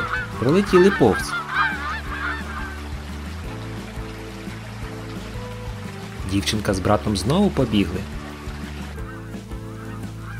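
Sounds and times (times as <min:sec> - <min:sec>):
geese honking: 0:00.0 - 0:03.2, 0:07.7 - 0:10.3
steady musical background: 0:00.0 - 0:10.3
narrator speaking: 0:00.3 - 0:01.4, 0:06.2 - 0:08.2
speech: 0:00.4 - 0:01.4, 0:06.3 - 0:08.2.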